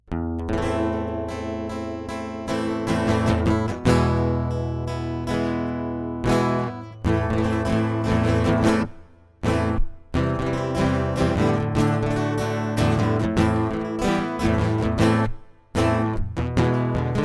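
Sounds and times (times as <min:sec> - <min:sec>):
acoustic bullfight music: 0:00.1 - 0:17.2.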